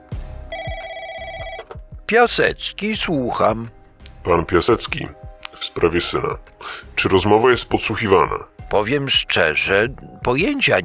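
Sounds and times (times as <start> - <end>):
low rhythmic thumps: 0.0 - 10.6
telephone ringing with electronic tone: 0.5 - 1.9
speech: 2.1 - 10.8.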